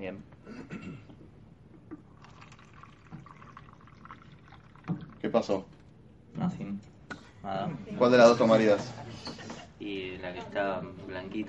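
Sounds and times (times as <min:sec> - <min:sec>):
speech: 0:00.0 - 0:01.1, 0:05.3 - 0:05.8, 0:06.4 - 0:11.4
purified water pouring into a small cup: 0:02.0 - 0:05.7.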